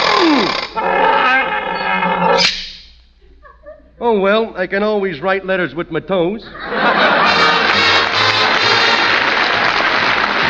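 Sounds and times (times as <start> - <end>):
lion roaring: 0.0 - 2.4
laughter: 3.3 - 4.0, 6.4 - 10.4
speech: 4.0 - 7.2.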